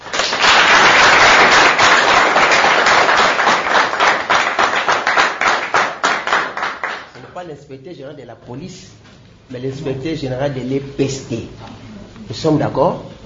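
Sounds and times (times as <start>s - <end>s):
audience at a centre applauding a visiting inspector general: 0.0s - 7.4s
speech: 7.4s - 11.7s, 12.3s - 13.2s.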